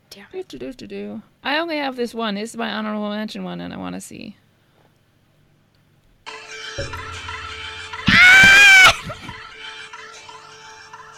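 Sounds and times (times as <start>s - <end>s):
speech: 0.2s - 4.4s
fictional bird-like creature scream sound effect: 8.1s - 9.2s.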